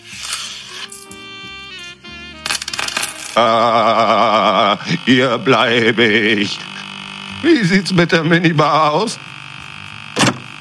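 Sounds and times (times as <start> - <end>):
coin rattling into the coin slot of a sofa bed: 2.5 - 3.4
speech: 3.4 - 6.7, 7.4 - 9.3.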